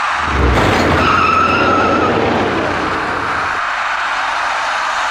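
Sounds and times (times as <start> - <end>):
passenger car tire skid squealing: 0.1 - 3.8
steady loud traffic noise on a main road: 0.1 - 4.9.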